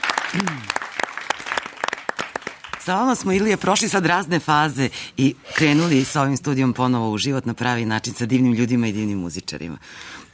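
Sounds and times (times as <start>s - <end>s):
audience applause at a live studio pop concert: 0.0s - 2.8s
speech: 0.3s - 0.8s, 2.9s - 10.3s.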